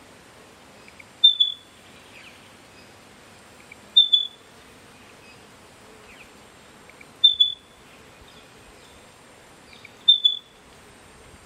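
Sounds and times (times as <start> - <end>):
faint hiss: 0.0 - 11.4
spotted pardalote giving high piping calls: 0.8 - 2.9, 3.6 - 4.4, 6.9 - 9.0, 9.7 - 10.6.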